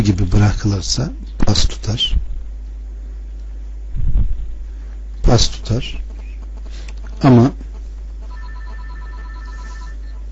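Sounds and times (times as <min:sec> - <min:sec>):
speech: 0:00.0 - 0:02.2, 0:05.3 - 0:06.0, 0:07.2 - 0:07.6
faint low hum: 0:00.0 - 0:10.3
telephone ringing with an electronic trill: 0:08.3 - 0:10.2.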